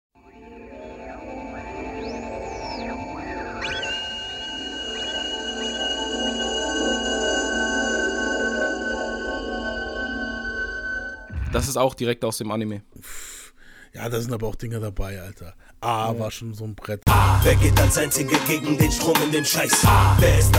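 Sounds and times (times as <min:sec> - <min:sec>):
strange electronic beeping tones from an album intro: 0:00.2 - 0:09.7
speech: 0:11.6 - 0:13.3, 0:13.9 - 0:20.5.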